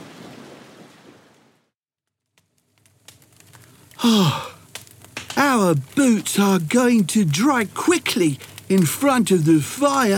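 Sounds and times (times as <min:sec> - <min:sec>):
scattered drips and taps after rain: 0:02.4 - 0:10.1
heavy rain pouring down: 0:03.6 - 0:10.1
speech: 0:04.0 - 0:04.5, 0:05.5 - 0:10.1.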